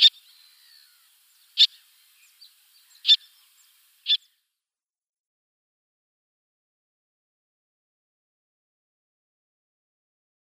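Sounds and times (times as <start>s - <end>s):
little tern sharp high calls: 0.0s - 4.4s.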